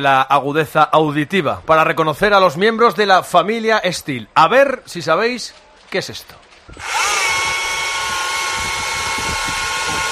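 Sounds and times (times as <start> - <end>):
speech: 0.0 - 7.4
electric chainsaw cutting a log: 6.8 - 10.1.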